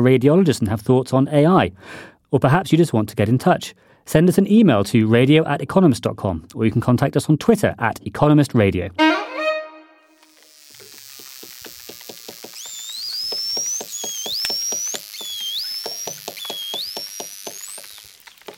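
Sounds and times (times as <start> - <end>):
speech: 0.0 - 9.2
short tonal note: 9.0 - 10.1
bottlenose dolphin rapid clicks: 10.2 - 18.5
bottlenose dolphins chirping, whistling and squeaking: 12.5 - 18.4.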